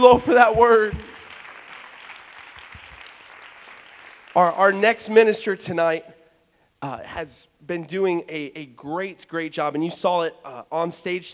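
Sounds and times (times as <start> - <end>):
speech: 0.0 - 1.1, 4.4 - 6.1, 6.8 - 11.3
large crowd clapping hands: 0.0 - 4.6.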